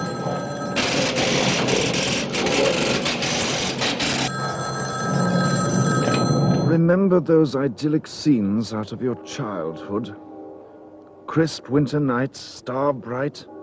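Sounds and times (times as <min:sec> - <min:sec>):
old-fashioned telephone bell ringing with a harsh metallic rattle: 0:00.0 - 0:06.8
speech: 0:06.8 - 0:10.3, 0:11.4 - 0:13.5.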